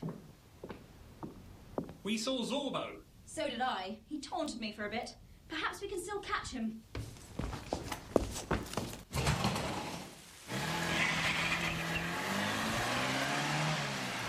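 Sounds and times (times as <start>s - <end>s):
speech: 2.0s - 7.0s
clopping steps: 6.9s - 9.6s
car engine starting and revving as the vehicle pulls off: 9.2s - 14.2s.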